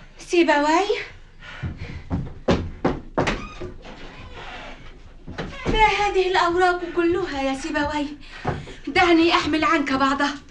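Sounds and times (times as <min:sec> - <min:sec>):
speech: 0:00.3 - 0:01.7, 0:05.8 - 0:08.3, 0:09.0 - 0:10.4
knocking on a door: 0:02.1 - 0:03.8.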